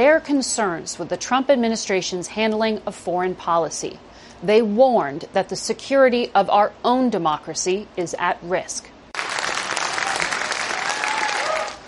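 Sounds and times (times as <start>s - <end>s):
speech: 0.0s - 8.9s
crowd applauding in a standing ovation after testimony: 9.2s - 11.8s.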